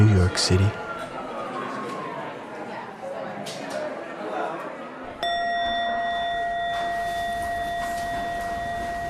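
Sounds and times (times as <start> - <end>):
crowd murmuring in a room: 0.0 - 5.2
speech: 0.2 - 0.8
single bell struck loudly and ringing out: 5.2 - 9.0.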